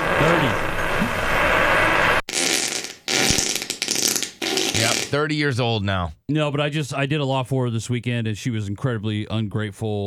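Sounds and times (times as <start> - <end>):
fart: 0.0 - 5.1
speech: 0.2 - 0.7, 5.1 - 10.0.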